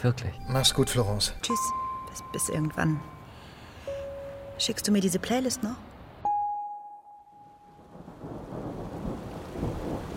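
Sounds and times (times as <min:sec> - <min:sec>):
speech: 0:00.0 - 0:03.2, 0:04.6 - 0:05.9
rain falling by the East River: 0:07.8 - 0:10.1.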